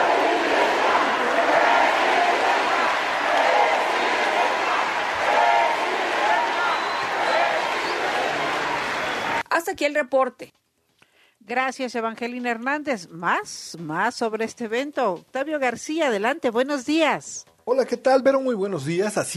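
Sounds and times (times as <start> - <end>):
large crowd voices at the close of a speech: 0.0 - 9.4
sparse crowd clapping: 0.8 - 9.4
speech: 9.8 - 10.6, 11.5 - 19.3.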